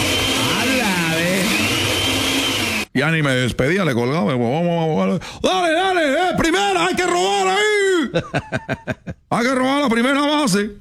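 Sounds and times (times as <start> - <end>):
electric blender motor whirring: 0.0 - 2.9
speech: 2.9 - 10.7
laughter: 8.1 - 9.2.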